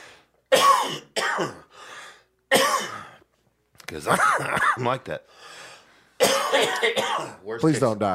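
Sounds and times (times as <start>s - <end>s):
person coughing: 0.5s - 1.7s, 2.5s - 3.2s, 4.1s - 5.0s, 6.2s - 7.4s
speech: 1.4s - 1.6s, 3.9s - 5.6s, 6.6s - 8.1s.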